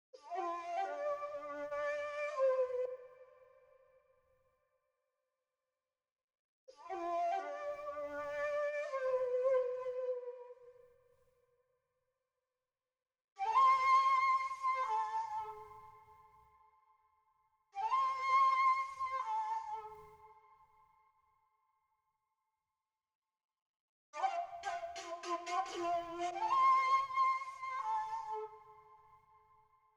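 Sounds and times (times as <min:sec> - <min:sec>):
flute melody in G minor at 110 BPM: 0:00.2 - 0:03.2, 0:06.8 - 0:10.6, 0:13.4 - 0:16.0, 0:17.8 - 0:20.4, 0:24.2 - 0:29.1.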